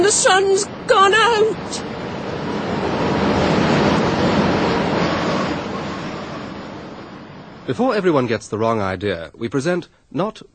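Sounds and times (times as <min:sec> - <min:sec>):
rushing wind: 0:00.0 - 0:08.4
speech: 0:00.1 - 0:01.9, 0:07.7 - 0:10.5.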